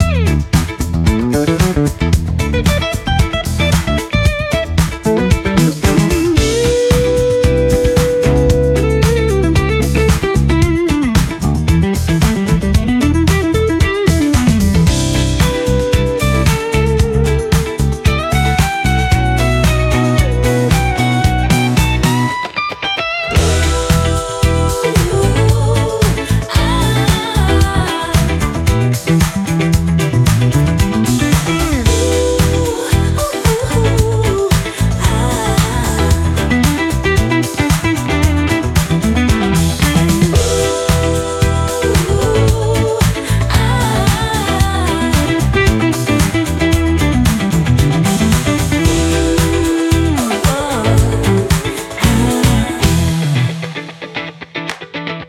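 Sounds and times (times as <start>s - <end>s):
funky AI social media music with uuuu aaaa vocal sounds: 0.0s - 55.2s.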